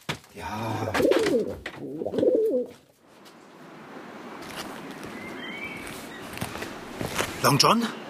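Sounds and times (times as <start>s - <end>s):
speech: 0.4s - 2.9s, 7.4s - 8.0s
pigeon cooing: 0.7s - 2.8s.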